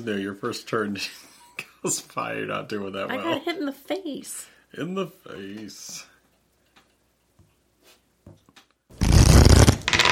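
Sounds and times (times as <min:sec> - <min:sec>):
speech: 0:00.0 - 0:06.1
omen card drawn from a deck during a board game: 0:08.9 - 0:10.0.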